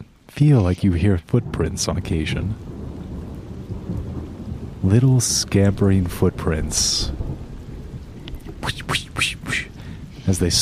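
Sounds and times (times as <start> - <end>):
steady rain: 0.0 - 10.6
speech: 0.3 - 2.7, 4.9 - 7.2, 10.3 - 10.6
thunder: 1.5 - 8.6.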